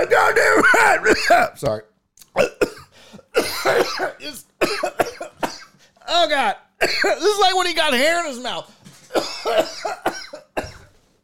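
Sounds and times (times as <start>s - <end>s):
speech: 0.1s - 2.5s, 3.4s - 5.5s, 6.1s - 10.8s
person coughing in a rough hacking fit: 0.4s - 1.5s, 2.3s - 5.8s, 6.8s - 7.3s, 9.1s - 11.0s.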